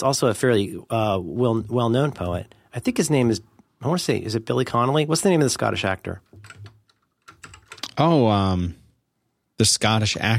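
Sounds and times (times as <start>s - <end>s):
speech: 0.0s - 6.6s, 8.0s - 8.8s, 9.6s - 10.3s
typing on a clicky keyboard: 6.4s - 8.0s.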